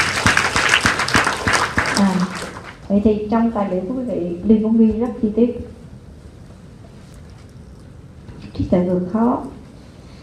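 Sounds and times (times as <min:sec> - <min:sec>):
audience applause at a parenting talk: 0:00.0 - 0:02.8
speech: 0:02.0 - 0:05.8, 0:08.6 - 0:09.6.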